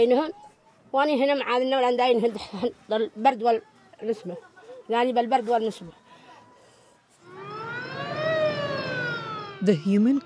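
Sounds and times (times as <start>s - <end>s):
speech: 0.0s - 6.0s, 9.6s - 10.2s
ambulance siren wailing: 7.2s - 10.2s.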